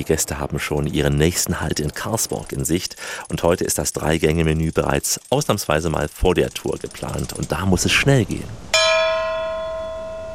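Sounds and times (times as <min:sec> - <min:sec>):
speech: 0:00.0 - 0:08.9
bell rung to call guests to a meal: 0:08.7 - 0:10.3.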